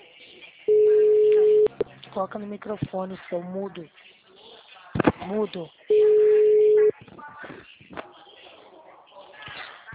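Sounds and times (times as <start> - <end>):
telephone tone as a call drops: 0.7 - 1.7, 5.9 - 6.9
speech: 2.2 - 4.1, 5.2 - 6.0.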